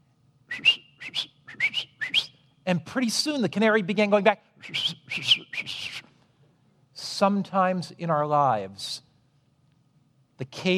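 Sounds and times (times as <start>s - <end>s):
person whistling a short melodic tune: 0.5s - 2.4s, 4.6s - 6.0s
speech: 2.7s - 5.4s, 7.2s - 8.9s, 10.4s - 10.7s.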